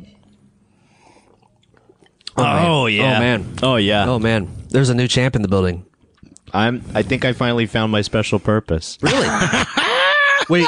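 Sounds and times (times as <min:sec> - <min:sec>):
sipping beer: 0:00.1 - 0:03.4, 0:05.9 - 0:06.6
loud breathy exhale: 0:00.7 - 0:01.5
swallowing and lip noises: 0:01.1 - 0:02.4, 0:05.9 - 0:06.6
speech: 0:02.4 - 0:05.9, 0:06.5 - 0:09.8, 0:10.5 - 0:10.6
laughter: 0:09.0 - 0:10.6.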